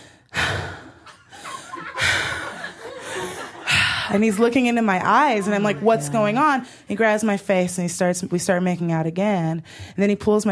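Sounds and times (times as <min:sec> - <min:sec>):
person imitating heavy breathing: 0:00.0 - 0:01.0, 0:05.4 - 0:06.9
laughter: 0:01.0 - 0:06.9
speech: 0:04.1 - 0:10.4.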